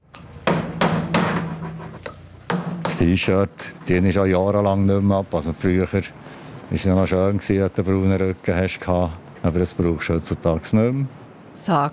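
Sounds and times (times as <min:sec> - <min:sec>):
metal hammer blows on a construction site in Heimberg near Thun: 0:00.0 - 0:03.3
busy construction site background: 0:00.0 - 0:11.5
speech: 0:03.0 - 0:11.9.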